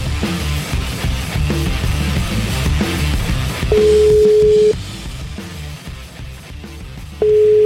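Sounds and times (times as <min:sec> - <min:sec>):
loud rhythmic music: 0:00.0 - 0:07.6
telephone ringback tones while a call is placed: 0:03.7 - 0:04.8, 0:07.2 - 0:07.6.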